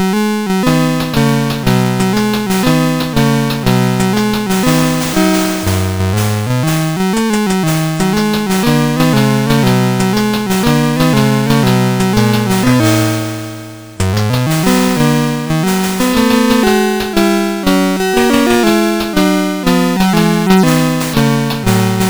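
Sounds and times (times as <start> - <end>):
SID chip CSG8580R5 synth demo music: 0.0 - 22.0.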